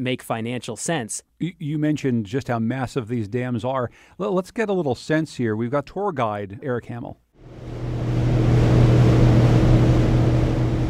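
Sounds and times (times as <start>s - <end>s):
speech: 0.0s - 7.7s
hydroelectric turbine roaring in a massive dam powerhouse in Quebec: 7.4s - 10.8s.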